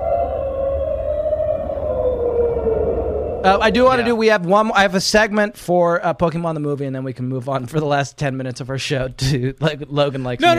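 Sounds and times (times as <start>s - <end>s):
whale-like creature cry gliding downward: 0.0s - 4.0s
low rumbling background: 0.0s - 4.3s
speech: 3.4s - 10.5s.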